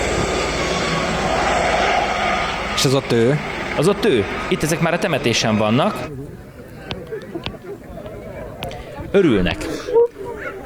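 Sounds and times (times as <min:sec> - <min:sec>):
helicopter landing at a funeral: 0:00.0 - 0:06.1
speech: 0:02.8 - 0:06.4, 0:09.1 - 0:09.9.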